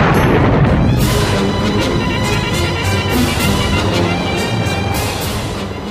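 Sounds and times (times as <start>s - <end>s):
Russian naval cannon firing explosive shells from shell guns: 0.0s - 2.5s
dense rumbling barrage of naval cannon booms: 0.0s - 5.8s.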